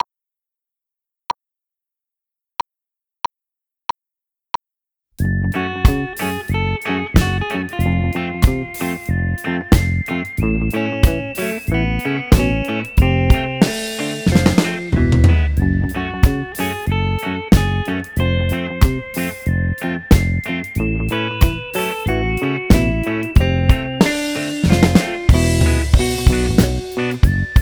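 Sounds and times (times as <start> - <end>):
drums: 5.2 - 27.6
guitar: 5.2 - 27.6.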